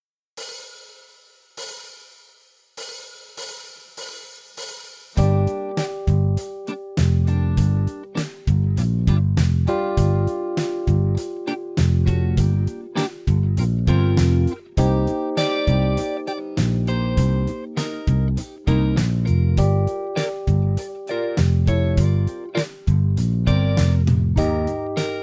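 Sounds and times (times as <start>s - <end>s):
G minor blues backing on guitar: 5.2s - 25.2s.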